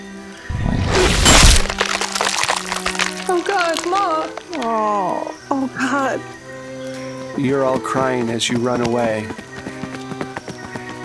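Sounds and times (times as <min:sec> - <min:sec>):
scattered crackles and thuds: 0:00.5 - 0:04.8
crunching and tearing as a creature tears through a body: 0:00.5 - 0:05.0
speech: 0:04.0 - 0:06.4, 0:07.4 - 0:09.5.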